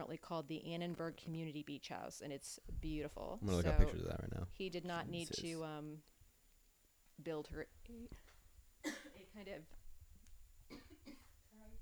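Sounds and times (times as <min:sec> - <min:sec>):
speech: 0:00.0 - 0:06.1, 0:07.2 - 0:08.3, 0:09.4 - 0:09.8
coughs: 0:08.8 - 0:09.3, 0:10.7 - 0:11.4.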